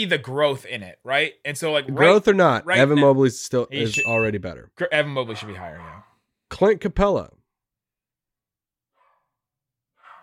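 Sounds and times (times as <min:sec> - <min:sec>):
speech: 0:00.0 - 0:07.4
dog barking: 0:05.2 - 0:06.1, 0:10.0 - 0:10.2.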